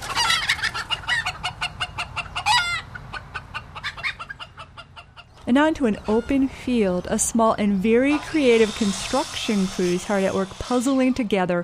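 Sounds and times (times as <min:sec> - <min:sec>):
chickens clucking in an ornate garden chicken coop: 0:00.0 - 0:09.2
speech: 0:05.5 - 0:11.6.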